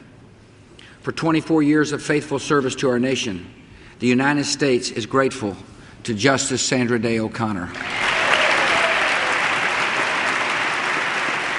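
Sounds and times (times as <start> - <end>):
speech: 1.0 - 8.1
large audience applauding a retiring U.S. Supreme Court associate justice: 7.8 - 11.5.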